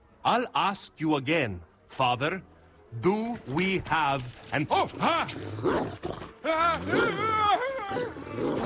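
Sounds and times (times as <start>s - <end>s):
speech: 0.2s - 8.6s
dog growling and snarling: 5.2s - 8.6s.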